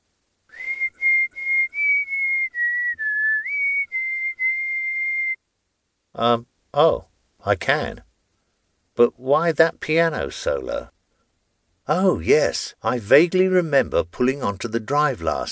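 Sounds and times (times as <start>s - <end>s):
person whistling sustained clear notes: 0.5s - 5.4s
speech: 6.2s - 8.1s, 9.0s - 10.9s, 11.9s - 15.5s.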